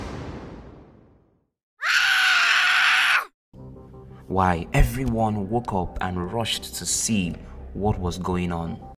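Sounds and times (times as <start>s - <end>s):
child screaming: 1.8s - 3.3s
speech: 4.3s - 8.9s.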